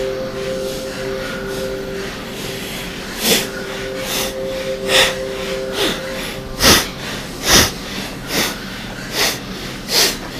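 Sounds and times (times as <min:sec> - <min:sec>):
faint steady drone: 0:00.0 - 0:10.3
forceful bhastrika bellows breathing through the nose: 0:06.6 - 0:10.3.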